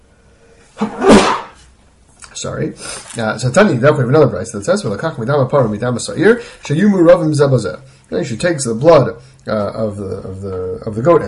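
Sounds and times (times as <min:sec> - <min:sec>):
speech: 0:00.8 - 0:01.2, 0:02.4 - 0:11.2
person sneezing: 0:00.8 - 0:01.6.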